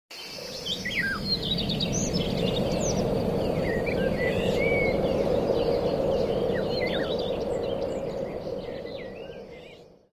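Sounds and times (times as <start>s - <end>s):
birds chirping: 0.1s - 10.1s.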